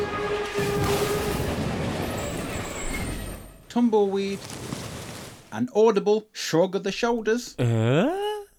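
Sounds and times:
train rumbling and clattering: 0:00.0 - 0:05.5
speech: 0:03.7 - 0:04.8, 0:05.5 - 0:08.2.

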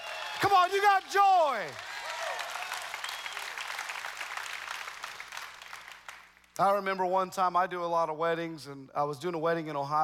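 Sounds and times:
scattered cheers and shouts: 0:00.0 - 0:03.4
large crowd applauding: 0:00.0 - 0:06.5
speech: 0:00.4 - 0:01.9, 0:06.6 - 0:10.0.

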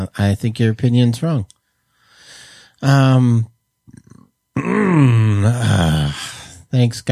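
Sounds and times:
speech: 0:00.1 - 0:01.6, 0:02.8 - 0:03.5, 0:04.6 - 0:07.1
breathy intake: 0:01.9 - 0:02.8, 0:04.6 - 0:06.6
loud throaty person burping: 0:03.9 - 0:06.4.

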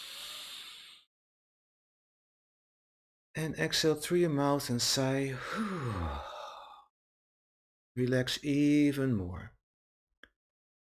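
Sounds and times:
deep inhale through the nose: 0:00.0 - 0:01.1
speech: 0:03.4 - 0:06.3, 0:08.0 - 0:09.6.

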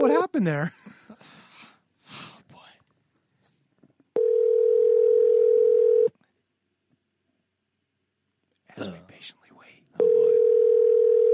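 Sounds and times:
speech: 0:00.3 - 0:00.8
steady mid-pitched telephone tone while a call is dialed: 0:04.2 - 0:06.1, 0:10.0 - 0:11.3.

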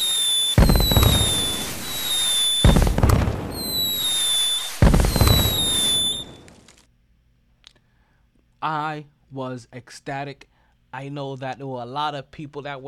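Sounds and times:
loud booming fireworks bursts with crackling decay: 0:00.0 - 0:06.9
steady rumble of explosions: 0:00.6 - 0:06.7
speech: 0:08.7 - 0:12.8.

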